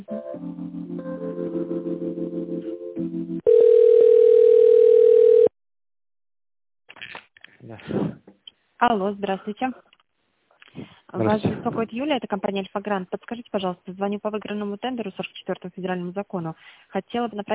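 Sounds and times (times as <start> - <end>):
telephone line tone during a call transfer: 3.4 - 5.5
speech: 8.8 - 9.9, 11.2 - 17.5.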